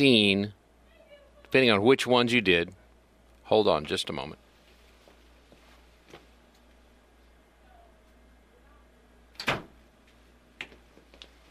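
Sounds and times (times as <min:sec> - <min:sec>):
speech: 0:00.0 - 0:00.6, 0:01.5 - 0:02.8, 0:03.5 - 0:04.4
quiet room hum: 0:00.0 - 0:11.4
door thudding shut: 0:09.4 - 0:09.8.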